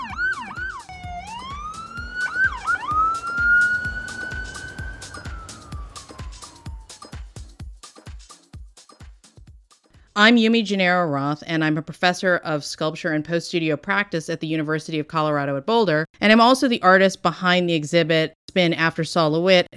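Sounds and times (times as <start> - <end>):
ambulance siren: 0.0 - 7.1
steady rapid clicking beat: 0.0 - 9.9
speech: 10.2 - 19.7.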